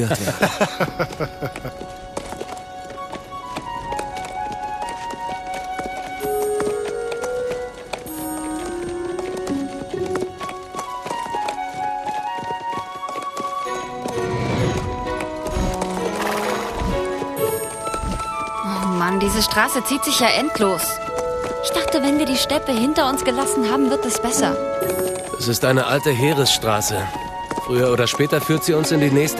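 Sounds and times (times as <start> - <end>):
laughter: 0.0 - 1.8
speech: 0.0 - 2.0, 19.2 - 21.0, 21.6 - 29.3
horse hooves clip-clopping on a road: 0.0 - 29.3
music: 0.0 - 29.3
horse whinnying loudly: 14.2 - 18.9.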